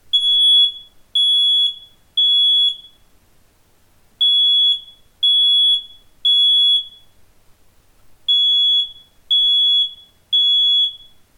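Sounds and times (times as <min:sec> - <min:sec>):
Gira Basic Q smoke alarm beeping: 0:00.1 - 0:03.0, 0:04.2 - 0:07.1, 0:08.3 - 0:11.2.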